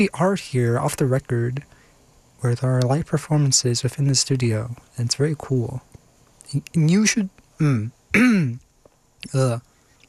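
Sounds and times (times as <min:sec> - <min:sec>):
speech: 0:00.0 - 0:01.8, 0:02.4 - 0:05.9, 0:06.5 - 0:08.6, 0:09.2 - 0:09.7
person clearing throat: 0:07.6 - 0:08.6.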